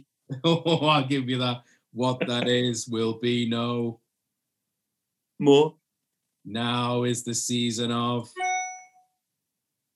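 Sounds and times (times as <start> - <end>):
speech: 0.3 - 4.0, 5.4 - 5.8, 6.4 - 8.4
bright clear metallic chime: 8.4 - 9.0.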